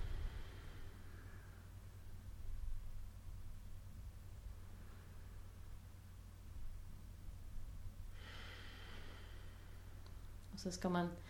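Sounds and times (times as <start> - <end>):
people breathing deeply in a breathing exercise: 0.0 - 1.8, 8.1 - 10.0
low hum: 0.0 - 11.2
speech: 10.6 - 11.2.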